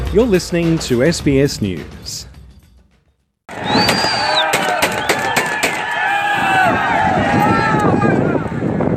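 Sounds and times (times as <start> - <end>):
speech: 0.1 - 2.3
crowd noise: 3.5 - 8.9
voices shouting: 3.5 - 8.9
celebratory gunfire by fighters after capturing a border crossing: 3.8 - 6.0.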